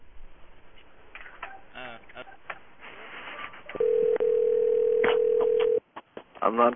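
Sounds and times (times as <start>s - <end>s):
ringback tone of an outgoing call to a pay phone: 3.8s - 5.8s.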